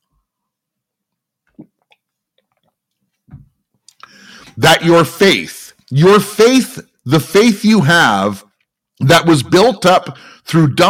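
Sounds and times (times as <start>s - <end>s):
mouth smacking and clicking: 1.4s - 3.2s, 3.8s - 4.2s
person gulping water: 1.4s - 3.2s
speech: 4.6s - 8.4s, 9.0s - 10.8s.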